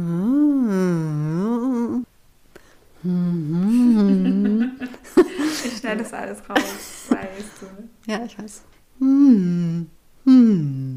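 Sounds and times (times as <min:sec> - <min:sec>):
person humming as a voice-therapy exercise: 0:00.0 - 0:02.1, 0:03.0 - 0:05.6, 0:09.0 - 0:10.9
breathy chuckle: 0:03.6 - 0:05.8
speech: 0:05.9 - 0:10.8.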